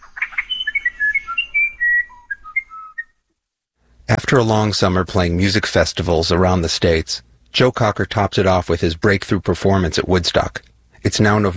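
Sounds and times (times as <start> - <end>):
musician wren singing: 0.0 - 3.1
speech: 4.1 - 11.5.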